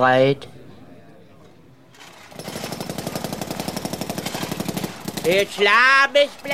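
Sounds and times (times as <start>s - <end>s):
speech: 0.0s - 0.6s, 5.2s - 6.5s
jackhammer pounding at construction work: 1.9s - 6.5s.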